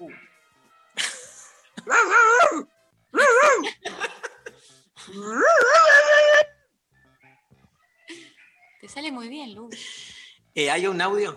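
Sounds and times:
human voice imitating whiny dog barks and yelps: 1.8s - 3.8s, 5.2s - 6.6s
laughter: 3.6s - 4.7s
speech: 9.2s - 10.0s, 10.6s - 11.3s.

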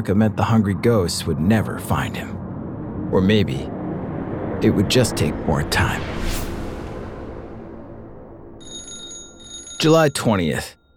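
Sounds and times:
speech: 0.0s - 2.4s, 3.1s - 3.8s, 4.6s - 6.5s, 9.8s - 10.9s
low rumbling noise: 0.0s - 9.6s
telephone ringing with a high bright electronic trill: 8.6s - 10.9s.

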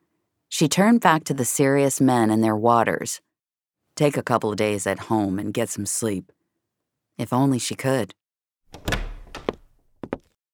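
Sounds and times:
speech: 0.6s - 3.3s, 4.0s - 6.4s, 7.2s - 8.9s
apartment door closing with a thunk: 8.7s - 9.7s
latch or lock clicks: 8.7s - 9.8s
door rattle: 8.7s - 9.9s.

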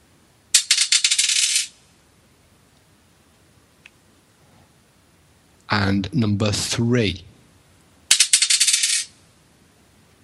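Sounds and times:
dice rattling and tumbling across a hard surface: 0.6s - 1.8s, 8.1s - 9.1s
speech: 5.7s - 7.3s.

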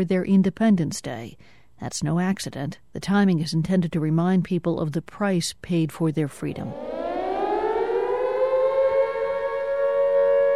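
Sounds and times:
speech: 0.0s - 6.9s
air raid siren wailing: 6.6s - 10.5s.

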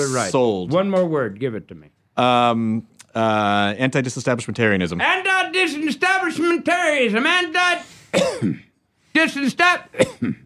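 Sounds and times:
speech: 0.0s - 10.4s
person clearing throat: 8.1s - 8.7s, 10.0s - 10.4s
person coughing: 8.1s - 8.7s, 10.0s - 10.4s.

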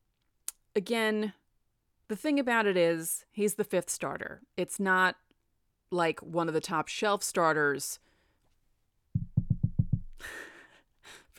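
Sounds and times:
speech: 0.8s - 1.4s, 2.1s - 5.2s, 5.9s - 8.0s, 10.2s - 11.3s
knocking on a wooden stand: 9.2s - 10.1s.

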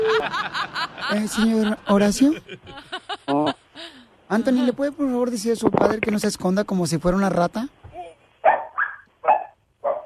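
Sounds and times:
speech: 0.0s - 3.6s, 4.3s - 7.8s
dog barking: 8.4s - 10.0s.

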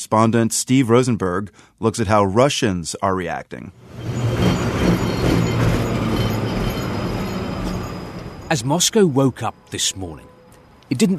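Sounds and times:
speech: 0.0s - 4.2s, 8.5s - 10.3s, 10.9s - 11.1s
tram carrying commuters trundling along a street in Moscow in the morning: 3.7s - 11.1s.

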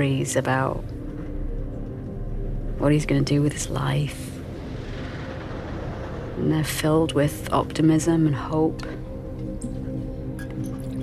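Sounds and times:
speech: 0.0s - 1.0s, 2.8s - 4.3s, 6.4s - 9.0s
steady low hum: 0.0s - 11.0s
scotch pouring into a glass: 10.4s - 11.0s.

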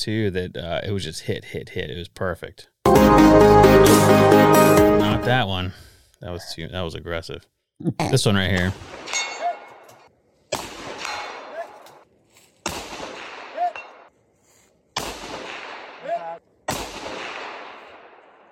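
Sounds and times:
speech: 0.0s - 9.2s
long-range rifle firing at a target about 680 away: 8.7s - 9.8s, 10.5s - 11.8s, 12.6s - 14.1s, 15.0s - 18.5s.

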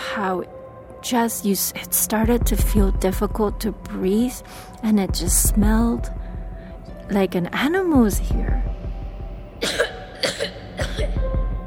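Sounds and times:
speech: 0.2s - 6.2s, 7.1s - 8.7s
low steady rumble: 2.1s - 9.6s
harsh coughs: 9.6s - 11.2s.

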